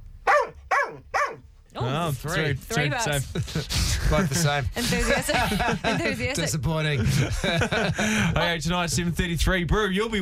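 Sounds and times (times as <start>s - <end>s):
dog barking: 0.2s - 1.4s
speech: 1.0s - 10.2s
laughter: 1.8s - 9.2s.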